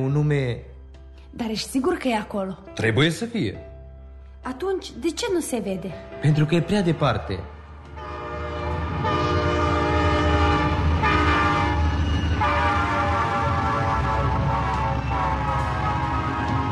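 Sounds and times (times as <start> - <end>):
speech: 0.0 - 0.7, 1.3 - 3.7, 4.4 - 7.6
night train rumbling past: 6.4 - 16.6
loud sustained train horn blaring: 7.8 - 16.6.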